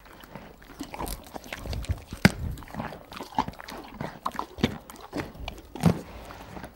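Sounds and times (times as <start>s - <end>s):
horse eating a carrot: 0.0s - 6.7s.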